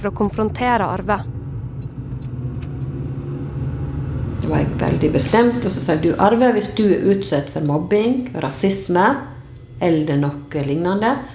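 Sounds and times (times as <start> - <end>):
speech: 0.0 - 1.4, 4.4 - 11.3
engine rumble from inside a moving car: 0.0 - 10.8
road noise: 0.0 - 11.3.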